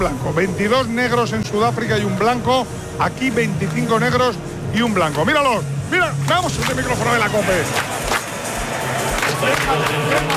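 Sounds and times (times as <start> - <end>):
speech: 0.0 - 7.9, 9.4 - 10.3
crowd noise: 0.0 - 10.3
large group doing traditional South African folk clapping on a football pitch: 7.6 - 10.3.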